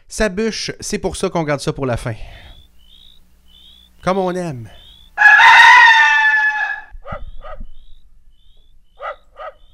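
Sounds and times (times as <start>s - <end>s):
speech: 0.1s - 2.5s, 4.0s - 4.8s
rooster crowing: 5.2s - 7.0s.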